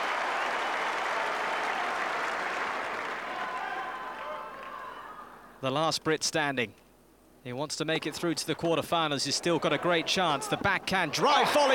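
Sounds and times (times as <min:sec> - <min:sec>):
large centre court tennis crowd applauding and cheering during a match: 0:00.0 - 0:05.1
speech: 0:05.6 - 0:06.8, 0:07.4 - 0:11.7.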